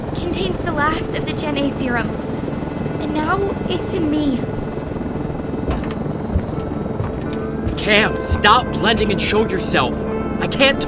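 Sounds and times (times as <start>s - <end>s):
aircraft engine roar during a rough takeoff on autopilot: 0.0s - 10.8s
speech: 0.3s - 2.4s, 3.0s - 4.6s, 7.8s - 10.8s
low thumps: 5.4s - 9.5s.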